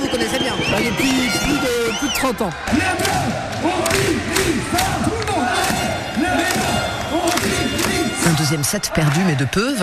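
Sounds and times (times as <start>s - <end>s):
crowd roaring and cheering in a small packed volleyball hall: 0.0s - 9.8s
speech: 0.2s - 5.1s, 8.2s - 9.8s.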